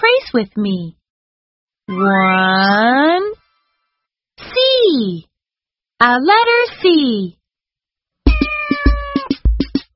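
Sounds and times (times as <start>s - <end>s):
speech: 0.0s - 1.0s, 1.9s - 3.4s, 4.6s - 5.3s, 6.0s - 7.4s
cat meowing: 8.3s - 9.4s
soft rhythmic thumps: 8.3s - 9.9s.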